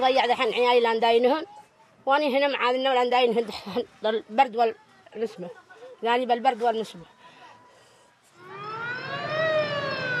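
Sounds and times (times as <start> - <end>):
speech: 0.0 - 7.2
ambulance siren wailing: 8.4 - 10.1
low rumble of traffic: 8.4 - 10.1.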